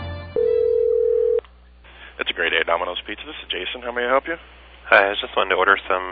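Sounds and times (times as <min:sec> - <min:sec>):
telephone call tone before pickup: 0:00.4 - 0:01.4
speech: 0:03.1 - 0:06.1.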